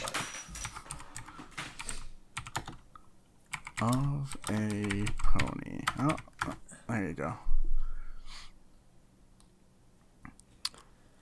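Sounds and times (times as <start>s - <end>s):
clicky keystrokes on a mechanical keyboard: 0.0s - 2.8s, 3.5s - 6.6s
speech: 3.8s - 7.5s.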